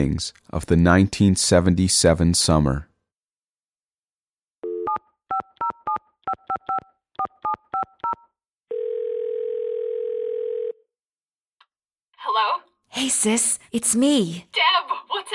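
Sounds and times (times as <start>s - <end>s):
speech: 0.0s - 2.9s, 12.4s - 15.3s
steady clear telephone dial tone: 4.6s - 10.8s
touch-tone telephone keypad beeps: 4.8s - 8.3s.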